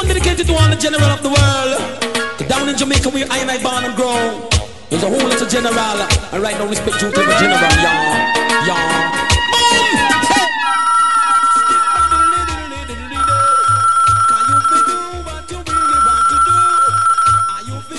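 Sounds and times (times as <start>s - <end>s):
loud music bed with a thumping pulsing bass beat: 0.0s - 10.5s, 15.1s - 16.1s
speech: 0.3s - 9.9s
telephone line ringing in long steady electronic tones during a call: 10.2s - 17.9s.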